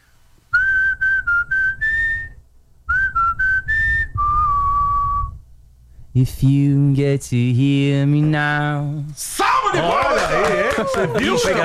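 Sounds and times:
person whistling a short clear melody: 0:00.5 - 0:05.4
faint low rumble: 0:01.0 - 0:09.1
speech: 0:06.2 - 0:11.6
laughter: 0:09.8 - 0:11.6.

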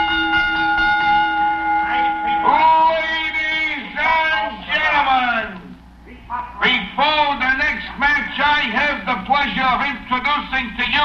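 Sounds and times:
bell ringing before a match: 0:00.0 - 0:04.3
faint noise: 0:00.0 - 0:11.0.

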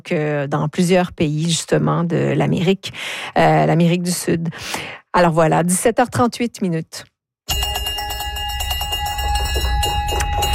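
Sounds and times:
speech: 0:00.0 - 0:07.1
bell ringing rapidly: 0:07.5 - 0:10.5.

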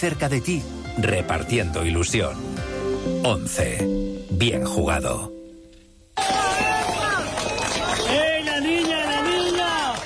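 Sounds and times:
speech: 0:00.0 - 0:05.4
crowd cheering and shouting at the rescue of a girl from earthquake rubble: 0:06.2 - 0:10.0.

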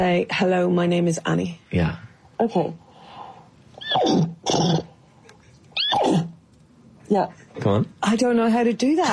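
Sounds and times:
speech: 0:00.0 - 0:02.8, 0:04.0 - 0:04.9, 0:07.1 - 0:09.1
woman imitating a horse neighing: 0:05.8 - 0:06.3.

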